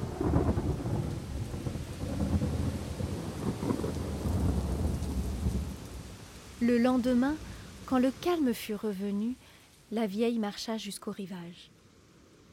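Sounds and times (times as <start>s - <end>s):
deep rumbling thunder: 0.0s - 8.0s
heavy rain in a thunderstorm: 0.0s - 12.5s
speech: 6.6s - 11.8s.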